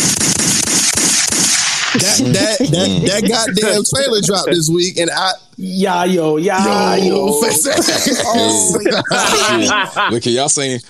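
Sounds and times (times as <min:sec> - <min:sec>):
gunshot sound effects: 0:00.0 - 0:02.2
laughter: 0:02.0 - 0:05.4, 0:06.6 - 0:10.8
speech: 0:02.0 - 0:10.8.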